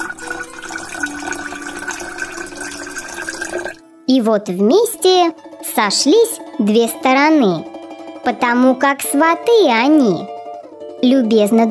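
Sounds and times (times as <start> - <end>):
liquid pouring into a glass: 0.0 - 3.8
speech: 4.1 - 10.3, 11.0 - 11.6.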